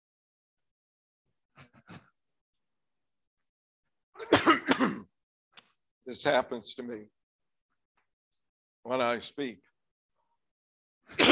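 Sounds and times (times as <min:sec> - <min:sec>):
person clearing throat: 0:04.2 - 0:05.1, 0:11.1 - 0:11.3
speech: 0:06.1 - 0:07.2, 0:08.8 - 0:09.7.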